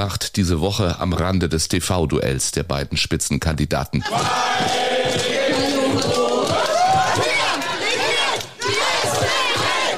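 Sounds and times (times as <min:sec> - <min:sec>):
speech: 0:00.0 - 0:06.2
crowd of young party supporters shouting and chanting at a political event: 0:04.0 - 0:09.9.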